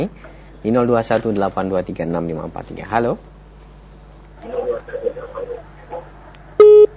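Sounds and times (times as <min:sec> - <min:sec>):
speech: 0:00.0 - 0:03.3
caller's voice over a telephone line during an Islamic call-in program: 0:04.4 - 0:06.2.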